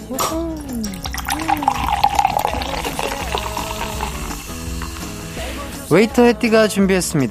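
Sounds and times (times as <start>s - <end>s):
zero-sugar cola pouring into a glass: 0.7s - 5.5s
speech: 5.9s - 7.2s.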